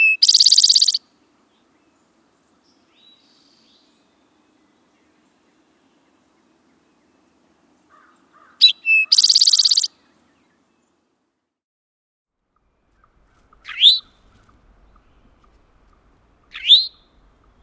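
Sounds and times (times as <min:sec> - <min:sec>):
Eastern towhee pure whistle and fast buzzy trill: 0:00.0 - 0:07.3, 0:08.0 - 0:10.6, 0:13.7 - 0:14.2, 0:16.5 - 0:17.6
Eastern towhee calling: 0:00.0 - 0:11.0, 0:12.6 - 0:17.6.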